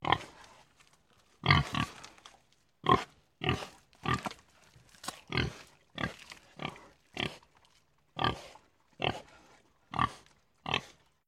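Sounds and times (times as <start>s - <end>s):
pig grunting and snorting: 1.4s - 2.1s, 2.8s - 4.4s, 5.3s - 7.5s, 8.2s - 11.1s.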